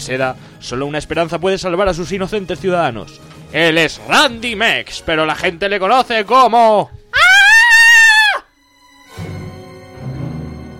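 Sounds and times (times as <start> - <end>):
speech: 0.0 - 7.0
loud high-pitched scream: 7.2 - 8.5.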